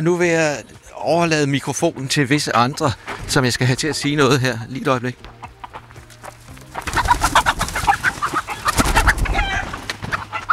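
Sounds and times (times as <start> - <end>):
speech: 0.0 - 5.4
flock of chickens clucking and chattering in a yard: 0.6 - 10.5.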